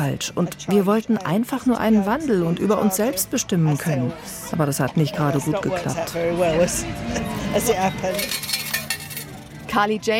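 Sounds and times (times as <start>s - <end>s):
speech: 0.0s - 8.6s, 9.7s - 10.1s
faint chatter: 0.0s - 10.1s
coins clinking out of a change machine: 8.1s - 9.4s.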